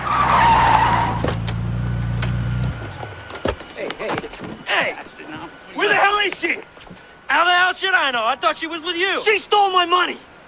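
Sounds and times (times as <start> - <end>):
car tyre screech in car park: 0.0 - 1.7
car engine rumbling in car park: 0.0 - 4.7
speech: 7.3 - 10.3.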